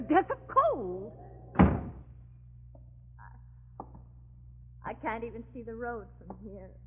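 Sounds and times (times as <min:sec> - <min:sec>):
speech: 0:00.0 - 0:01.2, 0:05.0 - 0:06.8
low steady hum: 0:00.0 - 0:06.8
door shut against a snowstorm with a solid thud: 0:01.5 - 0:02.1.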